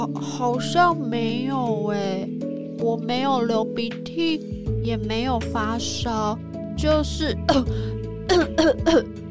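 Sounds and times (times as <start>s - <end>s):
speech: 0.1s - 9.2s
person with a sore throat coughing: 8.3s - 9.1s
throat-clearing: 8.3s - 9.1s.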